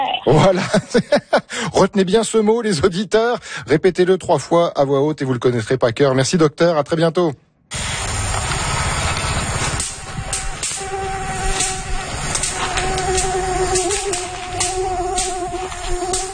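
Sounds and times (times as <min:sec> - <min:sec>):
speech: 0:00.2 - 0:08.0
laughter: 0:00.3 - 0:01.6
electric anti-mosquito racket zapping a mosquito with crackling snaps: 0:07.7 - 0:16.3
steady insect-like whine and hum: 0:07.8 - 0:16.3.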